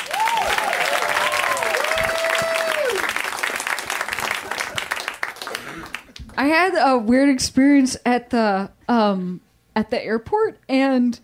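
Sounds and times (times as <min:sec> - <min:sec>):
audience applause at a live comedy show: 0:00.0 - 0:06.4
speech: 0:06.4 - 0:11.2.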